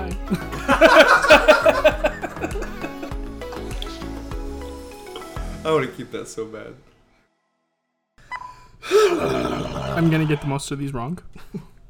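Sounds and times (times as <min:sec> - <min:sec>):
speech: 0:00.3 - 0:01.1, 0:05.7 - 0:06.9, 0:10.0 - 0:11.7
laughter: 0:00.3 - 0:03.9
low wet sputtering fart: 0:08.9 - 0:10.5.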